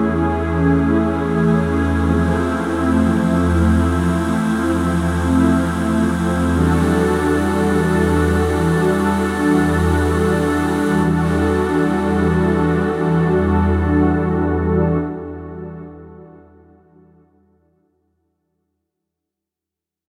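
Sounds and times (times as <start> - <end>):
choir pad: 0.2 - 16.0.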